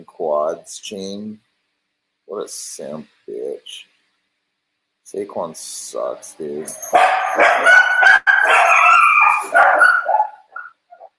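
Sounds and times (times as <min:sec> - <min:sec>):
speech: 0:00.0 - 0:01.5, 0:02.3 - 0:03.9, 0:05.1 - 0:08.6
dog barking and howling: 0:06.7 - 0:11.1.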